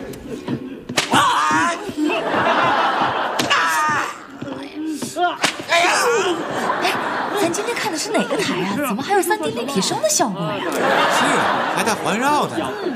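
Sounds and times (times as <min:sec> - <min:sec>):
laughter: 0:00.0 - 0:12.9
sharp loud whip cracks: 0:00.9 - 0:01.2, 0:05.4 - 0:05.7
speech: 0:08.0 - 0:12.9.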